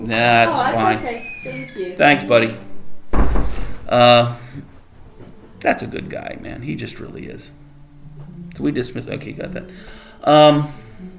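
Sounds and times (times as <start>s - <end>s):
speech: 0.0s - 2.7s, 3.9s - 4.7s, 5.6s - 7.6s, 8.6s - 11.1s
door creaking as it settles: 0.8s - 2.3s, 3.1s - 3.9s
door swinging shut with a low heavy thud: 3.1s - 3.9s.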